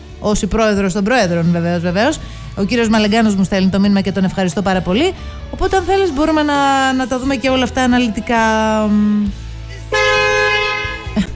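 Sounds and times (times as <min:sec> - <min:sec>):
speech: 0:00.2 - 0:09.4
bicycle horn toot: 0:09.9 - 0:11.2.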